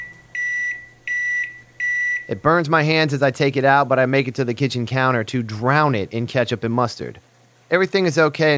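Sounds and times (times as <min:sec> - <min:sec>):
electronic beeps from a microwave oven after heating a hot dog and bun: 0:00.0 - 0:02.5
speech: 0:02.3 - 0:08.5.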